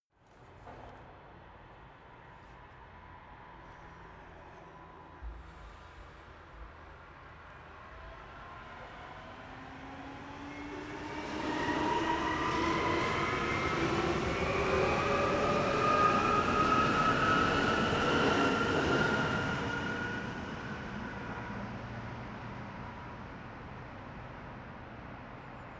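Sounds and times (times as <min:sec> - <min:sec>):
city train accelerating and departing: 0:02.9 - 0:23.5.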